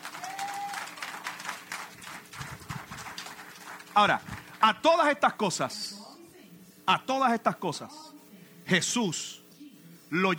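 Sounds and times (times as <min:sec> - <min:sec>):
crowd applauding: 0:00.0 - 0:04.6
speech: 0:04.0 - 0:06.0, 0:06.9 - 0:08.0, 0:08.7 - 0:09.4, 0:10.1 - 0:10.3.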